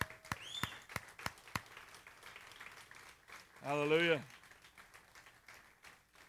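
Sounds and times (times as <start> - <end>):
audience applause with sharp distinct claps: 0.0 - 6.2
whistle: 0.2 - 0.9
speech: 3.6 - 4.4.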